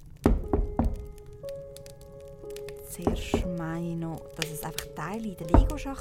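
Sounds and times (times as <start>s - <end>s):
hollow thudding knocks: 0.2s - 1.3s, 3.0s - 3.8s, 5.5s - 5.9s
speech: 3.0s - 5.9s.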